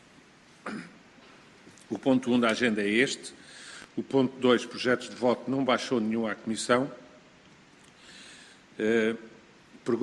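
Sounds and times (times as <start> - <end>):
person wearing a face mask coughing: 0.6 - 1.0
speech: 1.9 - 3.4, 4.0 - 7.0, 8.8 - 10.0.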